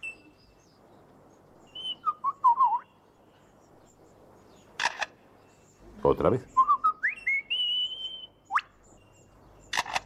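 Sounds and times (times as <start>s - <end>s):
bird warbling whistles: 1.7s - 2.9s, 6.5s - 8.8s
bird imitating a camera shutter click: 4.8s - 5.2s, 9.7s - 10.0s
speech: 6.0s - 6.6s.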